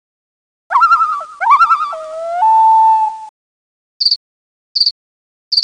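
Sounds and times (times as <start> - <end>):
loon calling: 0.7 - 3.3.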